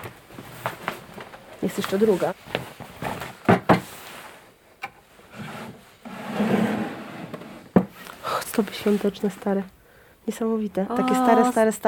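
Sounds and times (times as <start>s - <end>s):
speech: 1.6s - 2.8s, 8.6s - 11.8s
wooden drawer of an old table scraping open: 5.3s - 7.8s.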